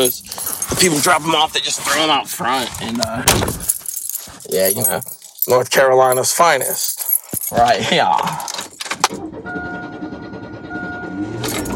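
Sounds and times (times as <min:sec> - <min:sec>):
keys jangling as they are taken off a hat: 0:00.0 - 0:01.1, 0:03.3 - 0:09.1
speech: 0:00.0 - 0:03.7, 0:04.5 - 0:06.9, 0:07.5 - 0:08.5.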